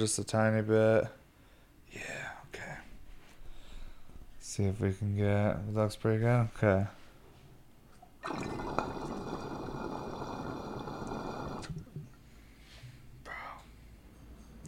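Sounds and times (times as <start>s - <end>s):
speech: 0.0s - 1.2s, 4.5s - 7.0s
faint bubbling and soft trickles of water in a glass water pipe: 8.0s - 12.2s
water draining through a glass water pipe with a 19 mm uptake: 8.2s - 12.0s.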